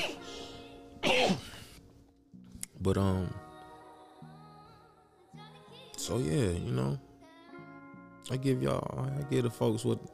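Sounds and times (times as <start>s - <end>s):
person coughing: 0.0s - 0.3s, 1.0s - 1.8s
throat clearing: 1.0s - 1.8s
speech: 2.8s - 3.4s, 6.1s - 7.1s, 8.3s - 10.1s.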